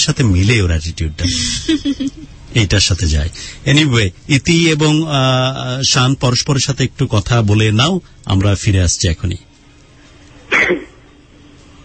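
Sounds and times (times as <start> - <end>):
speech: 0.0 - 9.5
person coughing: 10.5 - 11.0.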